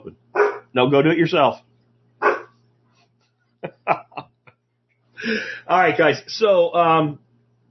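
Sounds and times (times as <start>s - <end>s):
low constant hum: 0.0s - 7.6s
dog barking indoors by an open door: 0.4s - 0.7s, 2.2s - 2.6s
speech: 0.8s - 1.7s, 5.7s - 7.2s
laughter: 3.6s - 4.5s.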